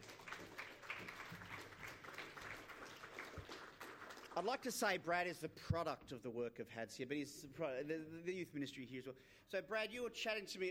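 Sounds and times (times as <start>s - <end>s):
audience clapping to welcome a youth minister: 0.0s - 4.8s
speech: 4.4s - 10.6s.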